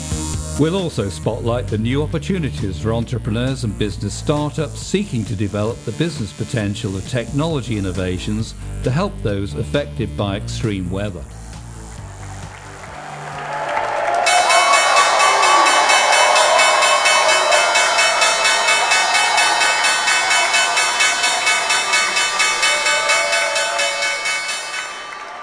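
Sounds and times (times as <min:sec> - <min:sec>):
speech: 0:00.6 - 0:11.4
crowd noise: 0:12.0 - 0:25.4
applause: 0:12.4 - 0:25.4
New York Stock Exchange bell ringing to mark a newly listed company's debut: 0:14.2 - 0:25.4.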